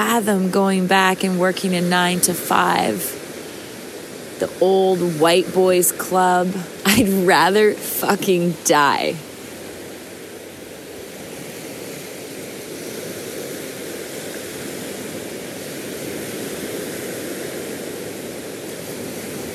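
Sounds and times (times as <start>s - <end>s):
speech: 0.0s - 3.2s, 4.4s - 9.3s
continuous roar of sea waves washing onto the shore: 0.0s - 19.5s.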